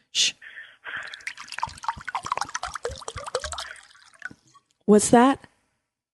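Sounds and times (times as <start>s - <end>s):
speech: 0.2s - 0.4s, 4.9s - 5.5s
spring water poured from one glass bottle into another glass: 0.9s - 4.6s.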